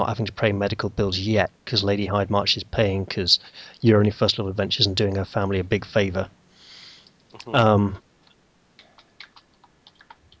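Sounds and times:
speech: 0:00.0 - 0:06.4, 0:07.4 - 0:08.0
keyboard typing: 0:08.8 - 0:10.3.

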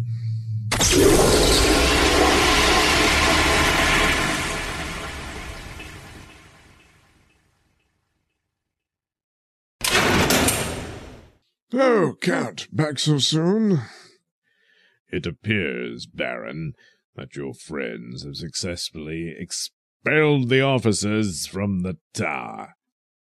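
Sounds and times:
loud rushing whoosh of departure: 0:01.2 - 0:06.2
outhouse door shutting: 0:09.8 - 0:11.2
speech: 0:11.7 - 0:14.0, 0:15.1 - 0:22.8.

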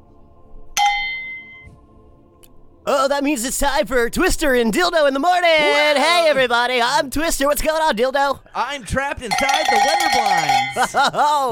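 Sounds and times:
speech: 0:02.9 - 0:11.4
laughter: 0:08.8 - 0:11.4
single bell struck: 0:09.3 - 0:11.0.

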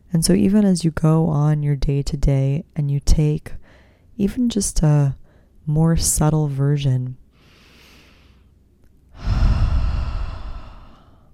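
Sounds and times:
speech: 0:00.1 - 0:03.6, 0:04.2 - 0:07.2
deep full-belly breath: 0:03.6 - 0:04.1, 0:07.4 - 0:08.5, 0:09.1 - 0:11.3.

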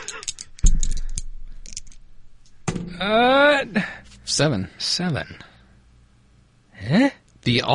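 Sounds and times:
dice rattling and landing: 0:00.1 - 0:02.1
person giving a drawn-out rising exclamation: 0:03.0 - 0:04.0
speech: 0:03.0 - 0:05.5, 0:06.8 - 0:07.7.

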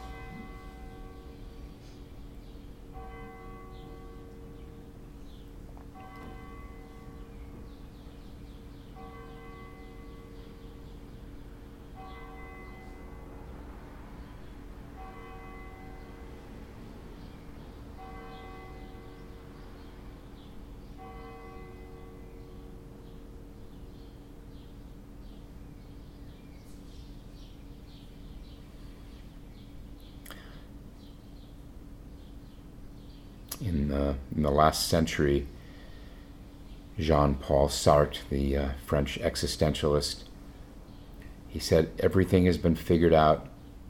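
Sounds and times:
church bell tolling: 0:00.0 - 0:25.3
speech: 0:33.6 - 0:35.6, 0:37.0 - 0:40.3, 0:41.5 - 0:43.5.

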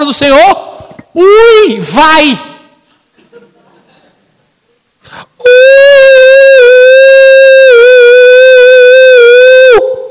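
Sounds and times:
speech: 0:00.1 - 0:02.5, 0:05.4 - 0:06.6
person imitating a howl: 0:05.4 - 0:10.0.

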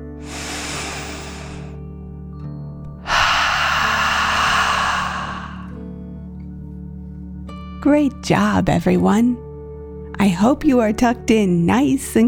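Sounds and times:
deep breath in and out during a calming bedtime meditation: 0:00.0 - 0:01.8, 0:03.0 - 0:06.0
speech: 0:07.8 - 0:09.5, 0:10.2 - 0:12.2.

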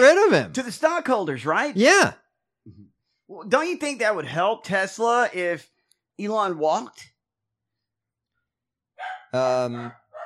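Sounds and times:
speech: 0:00.0 - 0:07.1, 0:09.3 - 0:10.0
dog barking: 0:09.0 - 0:10.2.

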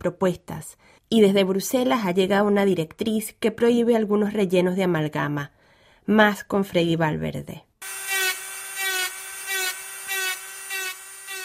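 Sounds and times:
speech: 0:00.0 - 0:08.0
dental drill whirring: 0:07.8 - 0:11.4.

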